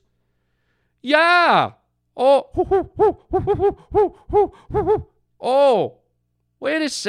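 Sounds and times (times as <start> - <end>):
speech: 1.0 - 6.0, 6.6 - 7.0
snowy owls hooting: 2.5 - 5.2.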